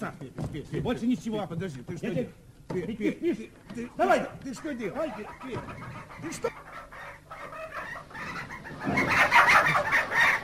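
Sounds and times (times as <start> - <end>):
speech: 0.0 - 6.6
chickens clucking and squawking: 4.4 - 10.4.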